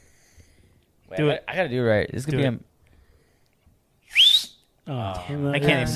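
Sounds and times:
speech: 1.1s - 2.7s, 4.9s - 5.9s
person whistling loudly with mouth: 4.0s - 4.6s.

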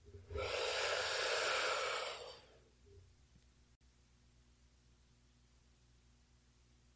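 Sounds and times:
deep breath in and out through the airways: 0.3s - 2.7s.

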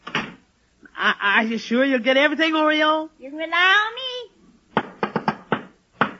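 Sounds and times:
speech: 1.0s - 4.0s
knocking on a door: 4.8s - 6.1s.

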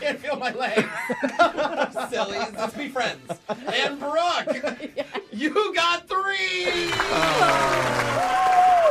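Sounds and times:
laughter: 0.3s - 5.5s
speech: 0.4s - 1.3s
shouts and rising whoops from a crowd: 6.5s - 8.8s
crowd cheering and clapping: 6.6s - 8.8s.

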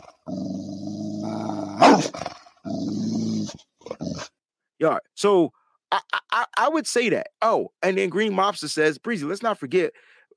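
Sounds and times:
dog growling and barking sound effect: 0.0s - 4.4s
speech: 4.8s - 10.2s.

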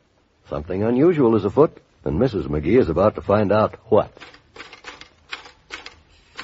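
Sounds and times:
speech: 0.5s - 4.4s
mechanical typewriter keys clattering: 4.2s - 6.4s.

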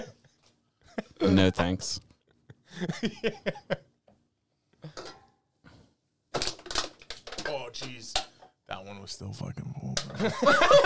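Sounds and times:
speech: 1.2s - 2.1s, 2.7s - 3.9s, 7.7s - 10.8s
laughter: 2.5s - 3.9s, 10.1s - 10.8s
aluminum seltzer cans with liquid inside being crushed: 6.3s - 8.3s.

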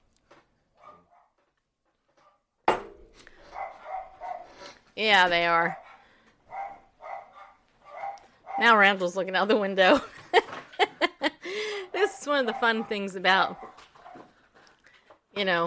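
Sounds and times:
dogs barking: 0.8s - 1.3s, 3.4s - 4.7s, 5.6s - 8.8s, 12.2s - 14.3s
speech: 5.0s - 5.8s, 8.6s - 10.6s, 12.3s - 13.7s, 15.4s - 15.6s
laughter: 9.9s - 12.8s.

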